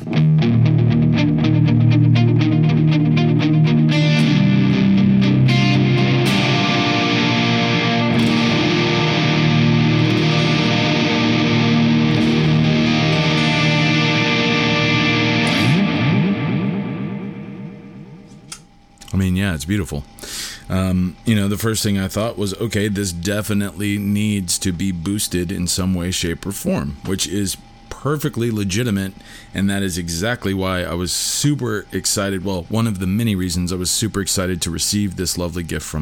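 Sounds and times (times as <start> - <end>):
overdriven electric guitar played through a dual echo delay: 0.0 - 18.5
speech: 19.7 - 36.0.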